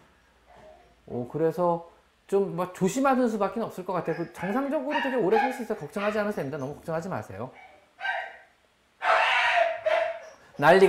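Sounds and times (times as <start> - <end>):
speech: 1.1 - 7.7, 10.6 - 10.8
dogs barking: 4.0 - 6.5, 7.5 - 10.8.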